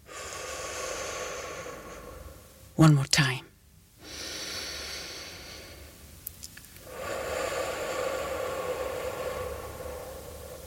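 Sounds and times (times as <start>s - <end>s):
long steady breath: 0.0s - 2.7s, 4.0s - 6.0s, 6.8s - 10.6s
speech: 2.8s - 3.5s.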